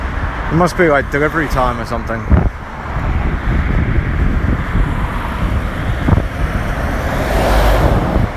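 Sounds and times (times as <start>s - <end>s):
wind buffeting the microphone: 0.0s - 8.3s
speech: 0.5s - 2.5s
heavy lorry driving past on a road: 4.7s - 8.3s.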